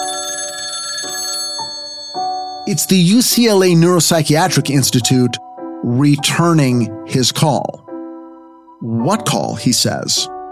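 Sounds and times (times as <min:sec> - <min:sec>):
telephone ringing with an electronic warble: 0:00.0 - 0:03.3
speech: 0:02.7 - 0:07.8, 0:08.8 - 0:10.4.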